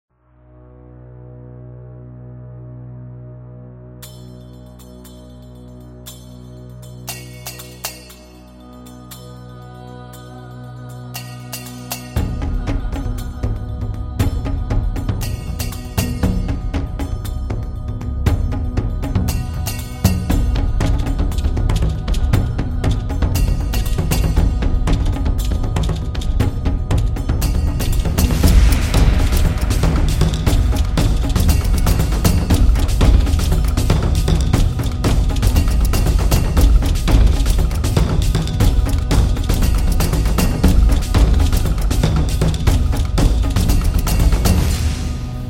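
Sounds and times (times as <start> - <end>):
Chinese drum for Chinese New Year: 11.2 - 45.4.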